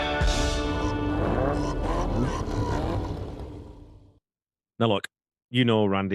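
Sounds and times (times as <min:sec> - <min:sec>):
Aston Martin sports car engine revving: 0:00.2 - 0:03.9
speech: 0:04.8 - 0:06.1.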